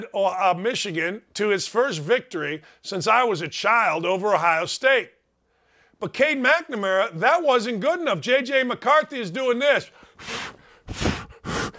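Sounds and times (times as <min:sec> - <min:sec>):
speech: 0:00.0 - 0:05.2, 0:06.0 - 0:11.1
voice imitating heavy breathing: 0:10.2 - 0:11.7.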